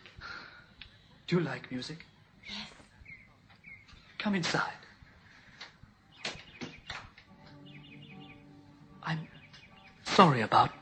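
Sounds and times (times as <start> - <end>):
speech: 1.3 - 2.1, 4.2 - 4.8, 9.1 - 9.3, 10.2 - 10.7
bird singing softly with thin wavering notes: 2.0 - 4.3, 5.2 - 10.7.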